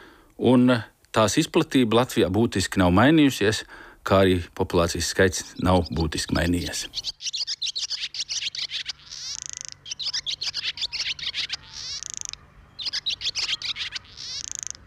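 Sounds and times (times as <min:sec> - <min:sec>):
speech: 0:00.4 - 0:07.5
swallow twittering: 0:05.3 - 0:14.8.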